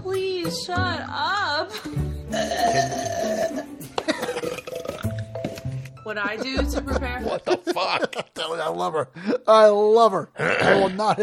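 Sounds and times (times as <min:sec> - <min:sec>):
speech: 0:00.4 - 0:03.7, 0:06.1 - 0:11.2
woman burping loudly: 0:02.3 - 0:05.2, 0:10.4 - 0:11.0
gurgling belches and throaty croaks: 0:02.3 - 0:05.3, 0:10.4 - 0:11.0
laughter: 0:06.1 - 0:08.6.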